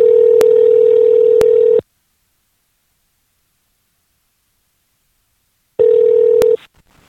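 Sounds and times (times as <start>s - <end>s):
loud steady electronic telephone ring tone: 0.0s - 1.8s, 5.8s - 6.6s.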